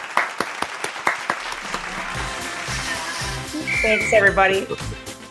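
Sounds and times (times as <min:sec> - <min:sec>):
small audience applause: 0:00.0 - 0:03.4
speech: 0:03.8 - 0:05.1.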